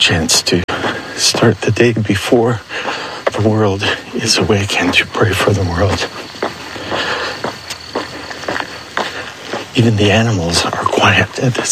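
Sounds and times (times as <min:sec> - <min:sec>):
footsteps of a person walking toward a monastery chapel: 0:00.0 - 0:11.7
hissy outdoor background: 0:00.0 - 0:11.7
speech: 0:00.1 - 0:06.4, 0:09.8 - 0:11.7.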